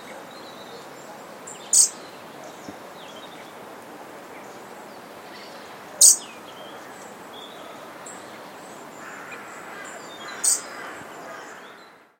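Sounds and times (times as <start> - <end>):
steady background hiss: 0.0 - 12.1
European robin short sharp high calls: 1.6 - 2.0, 6.0 - 7.0, 9.0 - 11.7.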